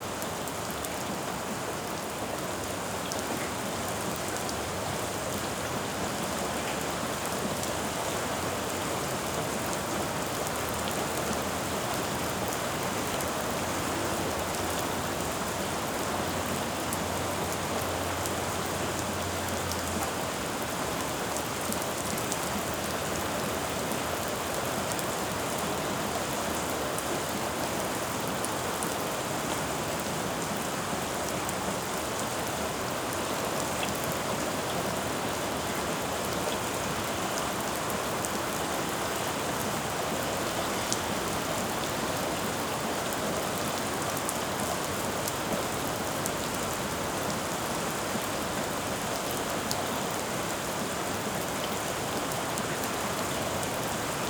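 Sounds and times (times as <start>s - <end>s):
splatty rain on a city street: 0.0s - 54.2s.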